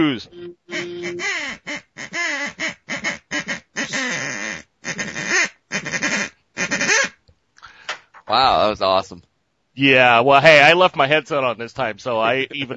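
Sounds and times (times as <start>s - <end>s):
speech: 0.0s - 1.6s, 8.3s - 12.7s
duck call blown in raspy quacks: 0.6s - 7.2s.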